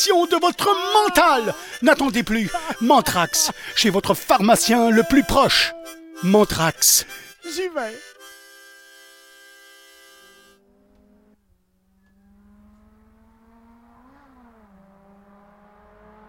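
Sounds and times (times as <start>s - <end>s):
laughter: 0.0s - 7.3s
speech: 0.0s - 8.1s
Cobalt SS sports car 2.4-litre Ecotec four-cylinder engine revving: 10.6s - 16.2s.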